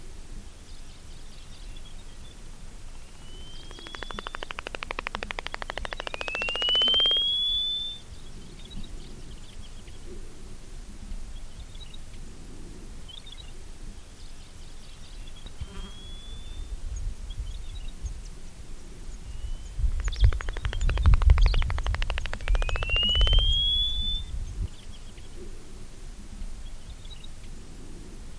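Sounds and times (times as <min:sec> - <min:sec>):
cape clapper lark Mirafra apiata: 0:03.0 - 0:08.1, 0:15.6 - 0:16.7, 0:19.3 - 0:25.4.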